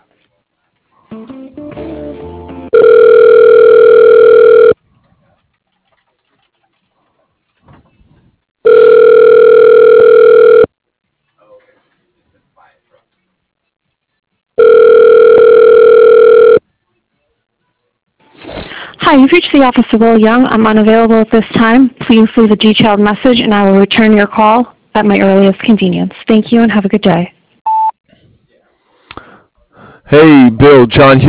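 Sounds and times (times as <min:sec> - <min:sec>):
telephone ringback tone while a call is transferred: 0:02.7 - 0:04.8, 0:08.6 - 0:10.7, 0:14.6 - 0:16.6
speech: 0:19.2 - 0:27.3, 0:30.1 - 0:31.2.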